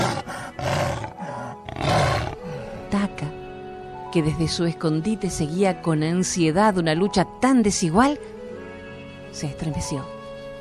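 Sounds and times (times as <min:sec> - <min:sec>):
jaguar roaring: 0:00.0 - 0:02.9
speech: 0:04.1 - 0:08.4, 0:09.4 - 0:10.2.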